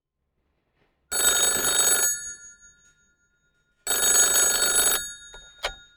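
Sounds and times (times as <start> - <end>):
telephone ringing in a language school office: 1.1 - 3.1, 3.8 - 5.9
telephone click on answering: 5.3 - 5.9.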